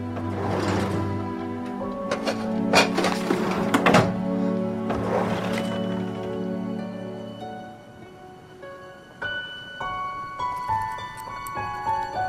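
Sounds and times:
desk drawers being slid open and rummaged through: 0:00.0 - 0:06.4
steady music: 0:00.0 - 0:12.2.

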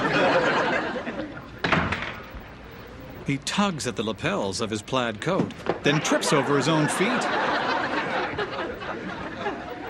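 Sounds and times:
laughter: 0:00.0 - 0:01.6, 0:05.9 - 0:09.8
front door bursting open with a sharp bang: 0:01.6 - 0:02.3
speech: 0:03.3 - 0:07.7.

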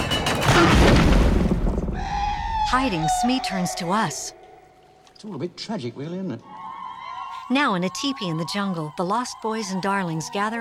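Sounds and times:
heavy gate crashing closed: 0:00.0 - 0:02.1
speech: 0:02.7 - 0:04.4, 0:05.2 - 0:06.5, 0:07.5 - 0:10.6.

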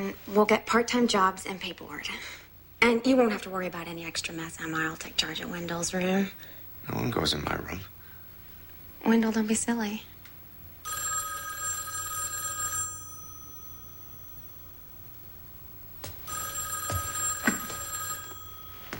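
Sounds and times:
speech: 0:00.0 - 0:08.0, 0:09.0 - 0:10.1
telephone ringing in a home: 0:10.8 - 0:18.9.

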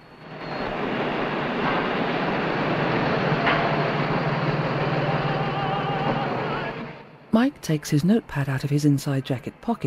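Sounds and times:
tram cars rumbling past on an elevated track: 0:00.0 - 0:07.8
speech: 0:07.4 - 0:09.8.

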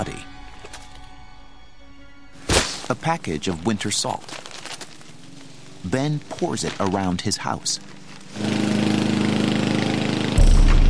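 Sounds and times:
speech: 0:02.9 - 0:04.4, 0:05.8 - 0:08.6
lawn mower engine running: 0:05.0 - 0:10.8.

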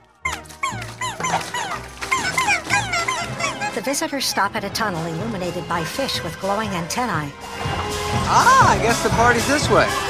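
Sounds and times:
cartoon puppy yipping and whimpering: 0:00.2 - 0:04.6
speech: 0:03.8 - 0:10.0.

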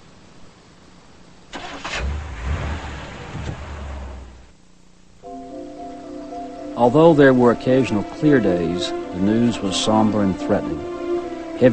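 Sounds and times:
car engine starting: 0:01.5 - 0:04.6
speech: 0:06.8 - 0:10.9.

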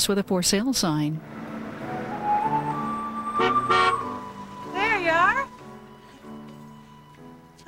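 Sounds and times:
speech: 0:00.0 - 0:01.4
car engine humming: 0:00.8 - 0:07.4
car rolling up and stopping: 0:01.2 - 0:06.0.

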